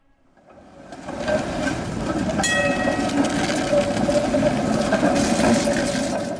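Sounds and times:
WWII-era tram from The Hague rumbling on rails: 0:00.0 - 0:06.3
ringing tones: 0:02.4 - 0:03.5
metallic tram wheel squeal: 0:02.4 - 0:04.4.

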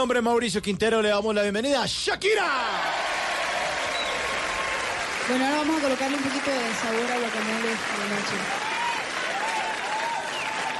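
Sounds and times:
speech: 0:00.0 - 0:03.2, 0:05.3 - 0:08.7
audience applause: 0:02.8 - 0:10.7.

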